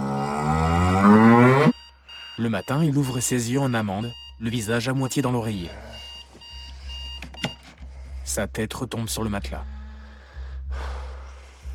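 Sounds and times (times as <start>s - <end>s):
cow mooing: 0.0s - 1.7s
speech: 2.4s - 6.0s, 8.4s - 9.7s.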